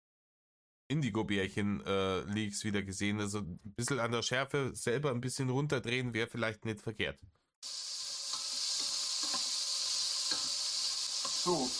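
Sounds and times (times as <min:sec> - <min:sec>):
speech: 0:00.9 - 0:07.9, 0:11.4 - 0:11.7
food frying in a pan: 0:07.6 - 0:11.7.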